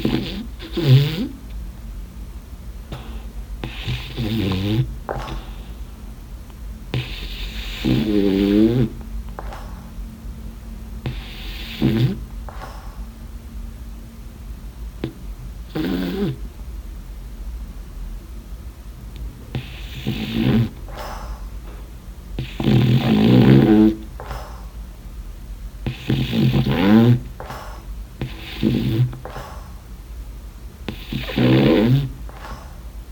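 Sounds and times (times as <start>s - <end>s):
French Bulldog snoring in loud rasping bursts: 0.0s - 1.5s, 2.8s - 5.9s, 6.9s - 9.9s, 11.0s - 13.1s, 15.0s - 16.5s, 19.4s - 21.8s, 22.4s - 24.8s, 25.8s - 29.9s, 30.8s - 33.0s
low steady hum: 0.0s - 33.0s.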